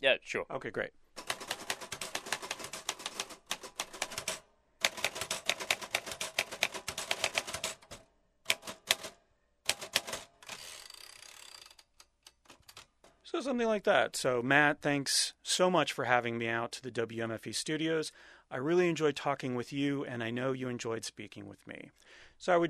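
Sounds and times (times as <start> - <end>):
speech: 0.0 - 1.3, 13.4 - 22.6
typewriter keystrokes clacking: 1.2 - 13.1.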